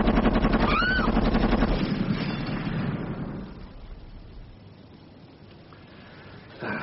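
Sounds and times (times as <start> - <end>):
gunfire in a shootout near a hotel window: 0.0 - 3.7.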